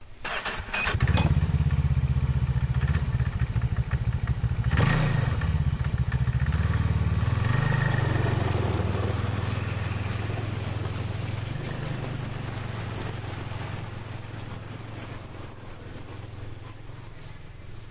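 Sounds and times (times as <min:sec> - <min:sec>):
Ski-doo snowmobile engine starting, howling and driving away: 0:00.4 - 0:17.9.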